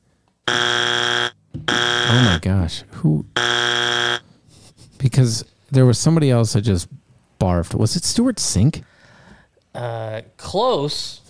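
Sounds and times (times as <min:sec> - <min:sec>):
game show wrong-answer buzzer: 0:00.5 - 0:02.4, 0:03.4 - 0:04.3
speech: 0:02.3 - 0:03.8, 0:05.1 - 0:08.9, 0:09.8 - 0:11.2.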